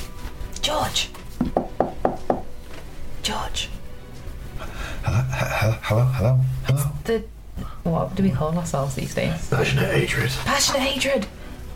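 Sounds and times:
speech: 0:00.7 - 0:01.7, 0:03.3 - 0:03.8, 0:05.0 - 0:11.4
firm knocking on a door: 0:01.4 - 0:02.5.

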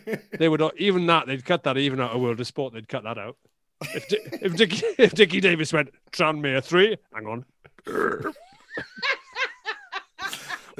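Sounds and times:
speech: 0:00.0 - 0:09.2
burp: 0:07.7 - 0:08.5
laugh-like vocal pulses: 0:07.7 - 0:10.7.

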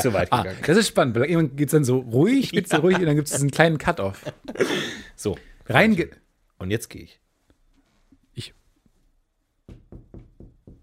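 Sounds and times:
speech: 0:00.0 - 0:07.2, 0:08.4 - 0:08.6
laughter: 0:02.4 - 0:05.1
knocks on a hard surface imitating footsteps: 0:09.6 - 0:10.8.

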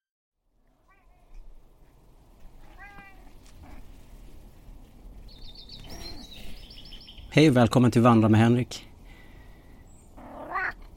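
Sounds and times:
cat meowing: 0:00.8 - 0:01.4, 0:02.6 - 0:03.9, 0:10.2 - 0:10.9
speech: 0:07.4 - 0:08.9.

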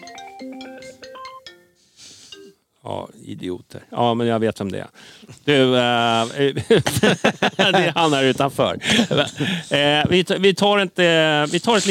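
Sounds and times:
phone ringtone playing a bright melodic tune of stepped electronic notes: 0:00.0 - 0:02.6
speech: 0:02.8 - 0:11.8
laughter: 0:06.5 - 0:09.8.

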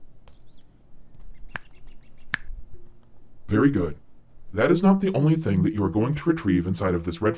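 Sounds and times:
faint bird chirps: 0:00.2 - 0:03.0, 0:04.0 - 0:04.5
crisp finger snaps: 0:01.5 - 0:02.6
speech: 0:03.5 - 0:07.3.

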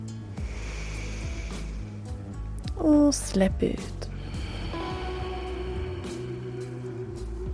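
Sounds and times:
long deep breath drawn in through the nose: 0:00.3 - 0:02.3, 0:04.1 - 0:07.2
speech: 0:02.8 - 0:04.1.

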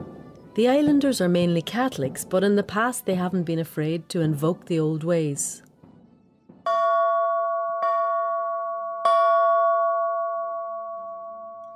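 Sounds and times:
speech: 0:00.6 - 0:05.6
British warship ship bell clanging: 0:06.7 - 0:11.7.

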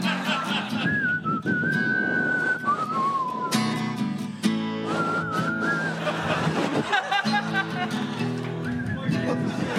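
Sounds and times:
laughter: 0:00.0 - 0:01.2, 0:04.9 - 0:09.7
person whistling a short melody: 0:00.7 - 0:04.0, 0:04.8 - 0:06.1, 0:08.5 - 0:09.4.

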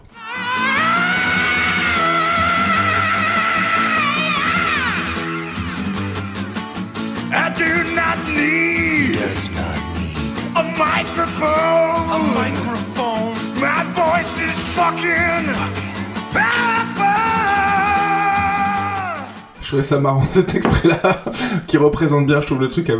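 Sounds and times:
heavy distorted guitar solo bending and wailing: 0:00.0 - 0:19.5
loud dense hard rock song: 0:00.0 - 0:19.6
screamed vocals: 0:00.1 - 0:05.9, 0:07.6 - 0:13.0, 0:13.7 - 0:19.5
laughter: 0:07.9 - 0:13.0, 0:20.1 - 0:21.7
speech: 0:19.7 - 0:22.9.

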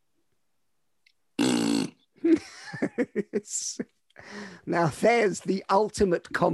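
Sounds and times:
person blowing a raspberry imitating a fart: 0:01.4 - 0:02.1
laughter: 0:02.2 - 0:03.8
speech: 0:02.2 - 0:06.5.

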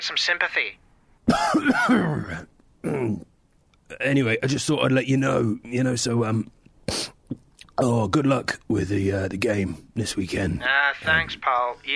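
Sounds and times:
speech: 0:00.0 - 0:03.3, 0:03.9 - 0:11.9
person coughing harshly: 0:01.3 - 0:03.2.

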